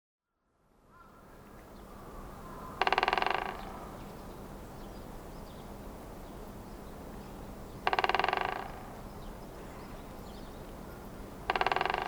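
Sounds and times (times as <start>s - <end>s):
constant low hum: 1.3s - 12.0s
Great Spotted Woodpecker drumming in Sapporo: 2.3s - 4.2s, 5.4s - 12.0s.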